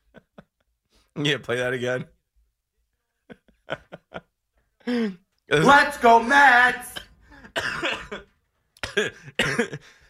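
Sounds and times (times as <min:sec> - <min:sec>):
speech: 0:01.2 - 0:02.2, 0:04.9 - 0:06.9, 0:09.0 - 0:10.0
laughter: 0:03.2 - 0:04.4
harsh loud coughs: 0:06.9 - 0:10.0.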